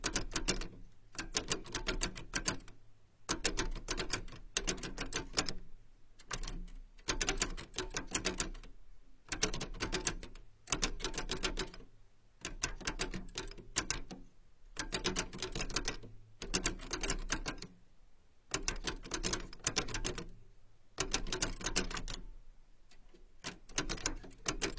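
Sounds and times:
old typewriter key strikes: 0:00.0 - 0:02.7, 0:03.3 - 0:05.6, 0:06.2 - 0:08.6, 0:09.3 - 0:11.8, 0:12.4 - 0:14.2, 0:14.8 - 0:17.7, 0:18.5 - 0:20.3, 0:21.0 - 0:22.2, 0:23.4 - 0:24.7.

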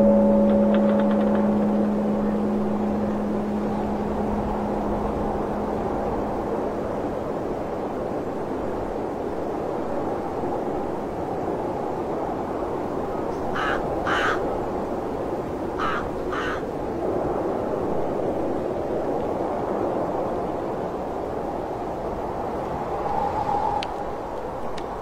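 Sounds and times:
short bright ringing taps: 0:00.0 - 0:02.2
low hum: 0:00.0 - 0:08.4
wind roaring through a snowy temple: 0:00.0 - 0:25.0.

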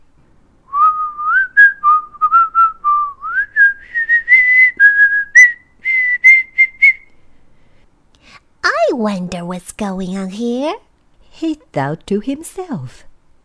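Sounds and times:
person whistling a lively tune behind a closed door: 0:00.7 - 0:07.2
speech: 0:09.0 - 0:13.1.

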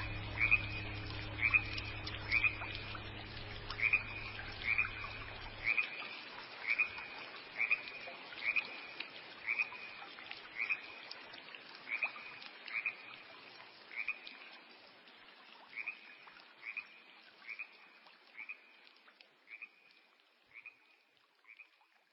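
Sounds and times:
low steady drone: 0:00.0 - 0:06.4
frog croaking by a small stream: 0:00.0 - 0:11.0, 0:11.9 - 0:13.2, 0:13.9 - 0:14.3, 0:15.7 - 0:18.8, 0:19.5 - 0:19.9, 0:20.5 - 0:21.8.

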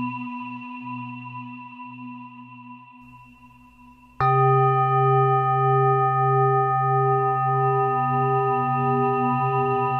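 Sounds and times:
singing bowl ringing: 0:03.1 - 0:09.9.

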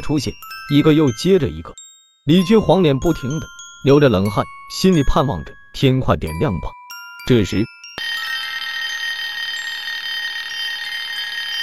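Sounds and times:
speech: 0:00.1 - 0:08.2
telephone ringing shrilly with high electronic trill: 0:08.0 - 0:11.6.

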